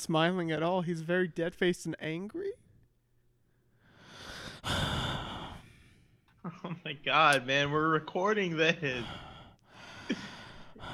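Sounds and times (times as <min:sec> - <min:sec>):
speech: 0:00.0 - 0:02.6, 0:04.6 - 0:05.0, 0:06.4 - 0:09.3, 0:10.1 - 0:10.9
heavy breathing with a sharp gasp: 0:03.5 - 0:06.4, 0:08.8 - 0:10.9.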